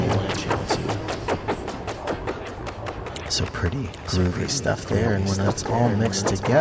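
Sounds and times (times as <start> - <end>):
percussive modular synth blips through modulated ping-pong delay: 0.0 - 6.5
speech: 3.3 - 6.5.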